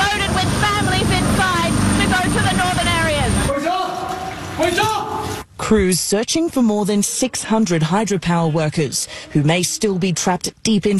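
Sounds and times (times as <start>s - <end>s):
rescue helicopter engine and rotors roaring while taking off: 0.0s - 3.5s
indistinct voices: 0.0s - 10.9s
speech: 5.7s - 10.9s.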